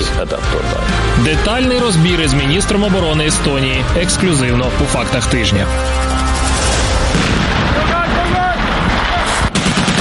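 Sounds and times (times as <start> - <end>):
speech: 0.2 - 6.2
explosions during military exercises: 6.1 - 9.9
gunfire during military exercises: 6.4 - 9.9.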